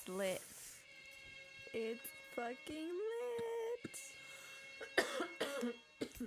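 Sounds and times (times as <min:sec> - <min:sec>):
speech: 0:00.0 - 0:00.6, 0:01.7 - 0:04.1, 0:04.8 - 0:06.2
harsh coughs into the microphone: 0:04.8 - 0:06.2.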